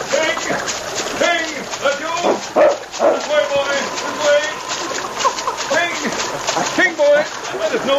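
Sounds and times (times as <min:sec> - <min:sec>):
water splashing and sloshing in a swift river current: 0:00.0 - 0:07.9
dog barking and whimpering while swimming: 0:02.5 - 0:03.2
laughter: 0:03.2 - 0:07.9.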